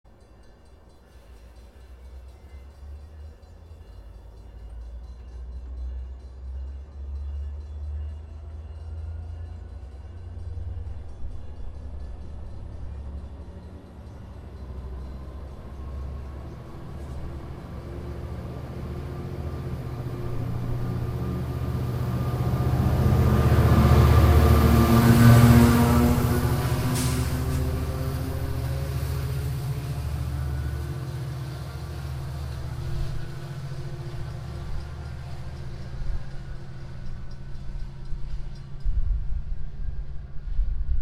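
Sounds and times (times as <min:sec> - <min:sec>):
metro station ambience: 0:00.1 - 0:41.0.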